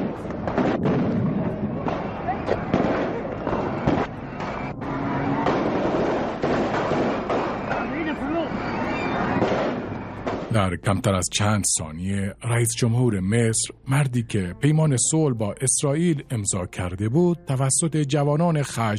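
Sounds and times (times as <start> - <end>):
gunfire: 0.0 - 4.7, 5.3 - 8.2, 9.2 - 10.5
voices shouting: 1.7 - 10.3
speech: 10.7 - 18.9.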